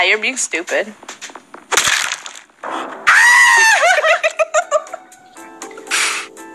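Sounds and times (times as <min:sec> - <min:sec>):
speech: 0:00.1 - 0:01.4
noisy crunching bursts: 0:01.2 - 0:03.7
person screaming high-pitched and breaking into shorter cries: 0:03.1 - 0:04.0
laughter: 0:03.7 - 0:05.0.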